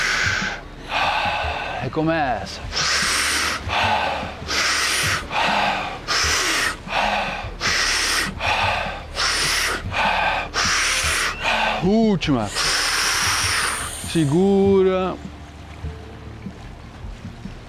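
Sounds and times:
forceful rhythmic breathing during a guided breathing exercise: 0.0s - 2.0s, 2.6s - 14.3s
speech: 1.8s - 2.8s, 11.8s - 12.6s, 14.1s - 15.3s.

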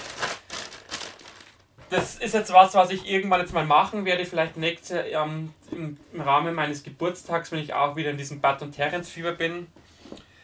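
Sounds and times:
jigsaw puzzle pieces rattling in a plastic bag: 0.0s - 1.5s
factory-sealed plastic bag of jigsaw puzzle pieces crinkling: 0.0s - 1.7s
speech: 1.9s - 9.8s.

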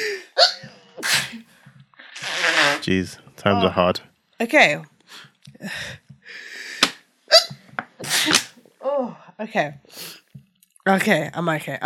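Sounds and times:
person with a cold sneezing: 0.0s - 1.5s, 6.8s - 8.6s
speech: 2.8s - 6.0s, 9.0s - 10.2s, 10.9s - 11.8s.

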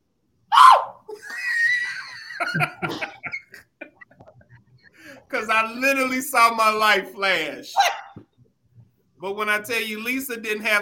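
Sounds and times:
person re-enacting a panicked terrified shriek: 0.5s - 2.2s
breathy choppy gasping laughter: 1.1s - 5.2s
speech: 2.4s - 3.1s, 5.3s - 7.9s, 9.2s - 10.8s.

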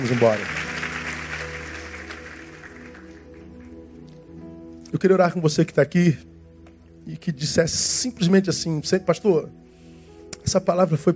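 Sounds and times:
speech: 0.0s - 0.6s, 4.9s - 6.3s, 7.1s - 9.6s, 10.4s - 11.1s
audience applauding: 0.0s - 3.8s
low sustained instrumental tones: 0.0s - 11.1s.

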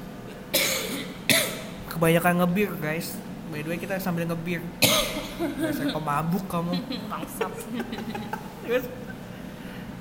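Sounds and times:
person coughing: 0.5s - 1.7s, 4.8s - 5.4s
speech: 2.0s - 9.1s
laughter: 5.2s - 9.3s.

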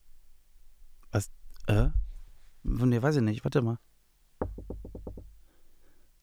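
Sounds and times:
speech: 1.1s - 2.0s, 2.6s - 4.5s
sharp knocks on a door: 4.4s - 5.4s.

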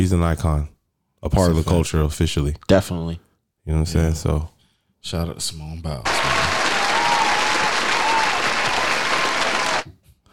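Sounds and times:
speech: 0.0s - 6.4s
crowd applauding: 6.1s - 9.9s.

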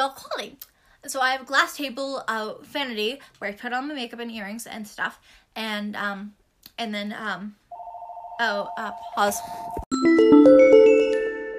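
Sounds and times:
speech: 0.0s - 7.6s, 8.4s - 10.7s
telephone ringing at home: 7.7s - 9.9s.

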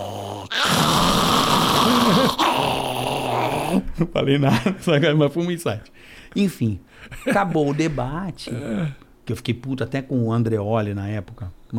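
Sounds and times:
person imitating a dog growl: 0.0s - 3.9s
speech: 1.9s - 2.7s, 3.7s - 11.7s
laughter: 3.8s - 5.1s.

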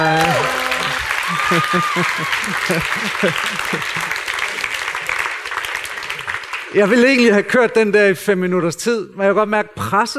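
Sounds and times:
speech: 0.0s - 0.3s, 1.4s - 4.2s, 6.7s - 10.1s
brief held electronic tone: 0.0s - 1.2s
laughter: 0.0s - 5.2s
audience applause: 0.0s - 7.4s.

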